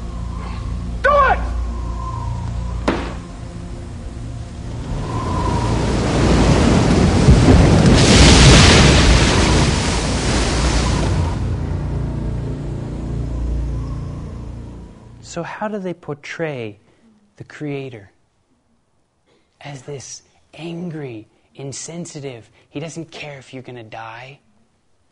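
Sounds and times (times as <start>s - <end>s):
storm wind rushing at sea: 0.0s - 15.2s
storm waves crashing at sea: 4.2s - 12.0s
speech: 15.4s - 16.8s, 17.4s - 18.1s, 19.6s - 24.4s.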